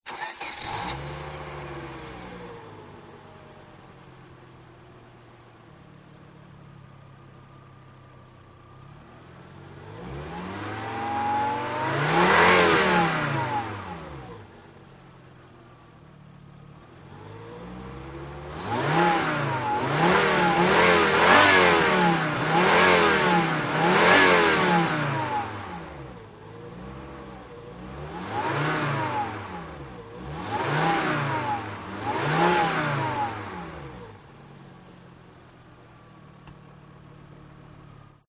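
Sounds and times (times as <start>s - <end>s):
Volvo 850 engine starting and revving: 0.0s - 38.2s.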